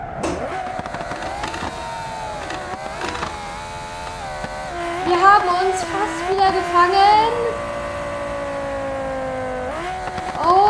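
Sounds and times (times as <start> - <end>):
video game car engine droning while skidding: 0.0 - 10.6
scraping mechanical noises: 0.1 - 6.3
speech: 5.4 - 7.6.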